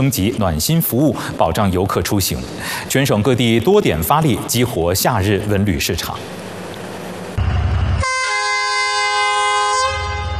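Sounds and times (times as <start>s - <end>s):
speech: 0.0s - 6.5s
low rumble of sightseeing train: 0.4s - 10.3s
sightseeing train whistle blast at a station: 7.5s - 10.3s.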